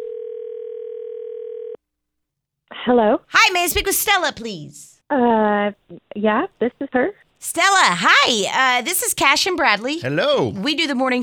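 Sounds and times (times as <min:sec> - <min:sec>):
buzzy electronic telephone ringing tone on the line: 0:00.0 - 0:01.8
speech: 0:02.8 - 0:11.2.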